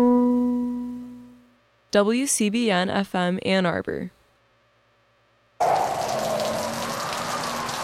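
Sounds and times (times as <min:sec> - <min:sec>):
speech: 0:01.9 - 0:04.2
heavy rain drumming on a car windshield: 0:05.6 - 0:07.8.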